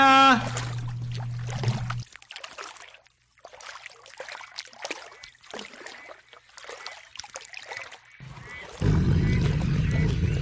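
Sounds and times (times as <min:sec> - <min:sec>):
steady low hum: 0:00.4 - 0:02.0, 0:08.8 - 0:10.3
water pouring and trickling: 0:00.4 - 0:10.3.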